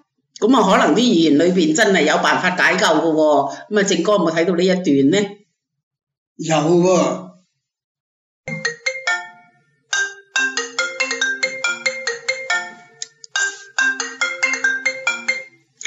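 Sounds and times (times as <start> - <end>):
speech: 0.4 - 5.4, 6.4 - 7.2
phone ringtone electronic melody: 8.5 - 15.8.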